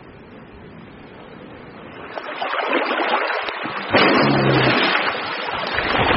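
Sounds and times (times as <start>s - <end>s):
spring meltwater flooding across breaking Arctic Ocean sea ice: 1.9s - 6.1s.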